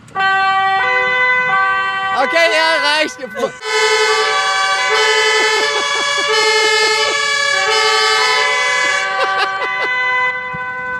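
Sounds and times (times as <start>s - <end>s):
fire truck horn blaring: 0.1s - 10.9s
speech: 2.2s - 4.2s, 6.1s - 7.2s
laughter: 5.0s - 7.4s, 8.1s - 10.0s.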